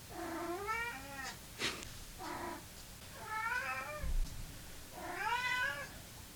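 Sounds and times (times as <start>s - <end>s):
cat meowing for dinner: 0.1s - 1.4s, 3.2s - 4.0s, 5.0s - 6.0s.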